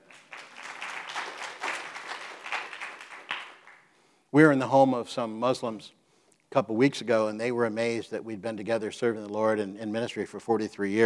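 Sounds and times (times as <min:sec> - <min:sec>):
crowd applauding: 0:00.0 - 0:03.9
speech: 0:04.3 - 0:11.0.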